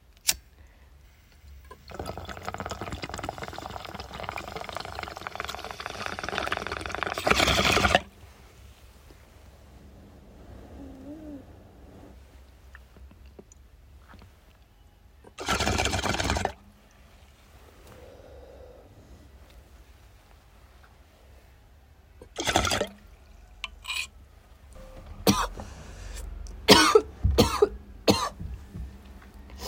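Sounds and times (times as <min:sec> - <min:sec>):
bong hit bubbling: 0:01.7 - 0:08.1, 0:15.3 - 0:16.6, 0:22.2 - 0:23.8, 0:24.8 - 0:28.6
person coughing harshly: 0:25.2 - 0:25.6, 0:26.7 - 0:28.4.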